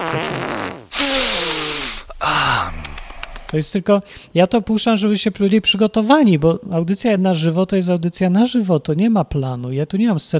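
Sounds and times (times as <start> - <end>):
comic fake fart sound effect: 0.0 - 2.1
speech: 0.1 - 0.6, 3.5 - 10.3.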